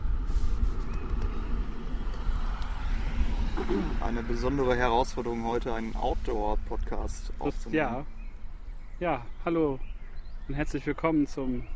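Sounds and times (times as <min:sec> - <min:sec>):
car driving past outdoors with engine and tire noise: 0:00.0 - 0:06.1
speech: 0:03.7 - 0:08.2, 0:09.0 - 0:09.9, 0:10.5 - 0:11.7.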